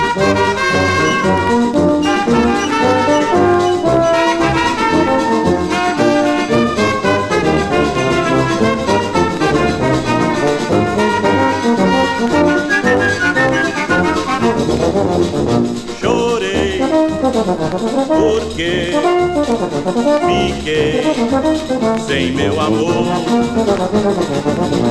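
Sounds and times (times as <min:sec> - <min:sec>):
lively samba band with rhythmic percussion, strummed strings and horns: 0:00.0 - 0:24.8
male singer singing samba: 0:16.0 - 0:17.3, 0:18.1 - 0:19.5, 0:20.2 - 0:23.7
speech: 0:19.8 - 0:24.8.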